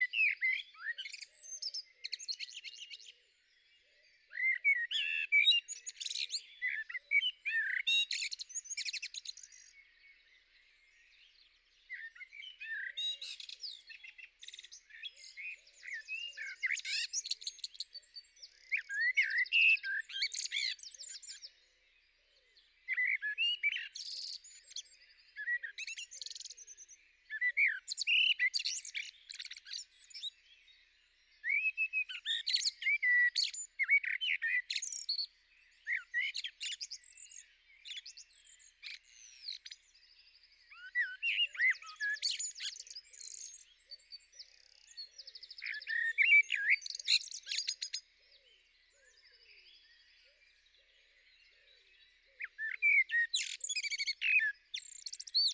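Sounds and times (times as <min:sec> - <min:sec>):
blackbird singing: 0:00.0 - 0:55.5.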